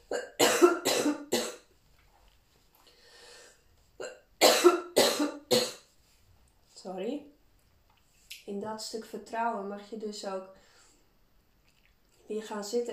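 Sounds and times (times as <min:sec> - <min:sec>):
person coughing harshly: 0:00.1 - 0:01.6, 0:04.0 - 0:05.8
faint breath: 0:02.8 - 0:03.7, 0:10.6 - 0:11.2
speech: 0:08.7 - 0:10.6, 0:12.3 - 0:12.9.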